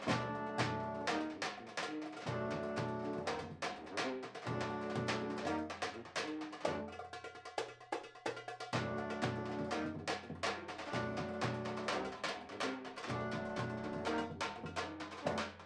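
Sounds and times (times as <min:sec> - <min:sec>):
first tenor saxophone: 0:00.1 - 0:07.0, 0:08.7 - 0:15.6.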